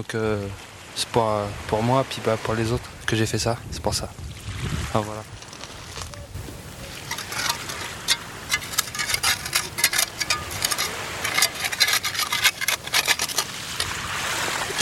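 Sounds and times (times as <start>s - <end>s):
speech: 0.0s - 5.4s
hand tools scraping encrusted oil layers off Breton granite rocks on a beach: 5.0s - 14.8s.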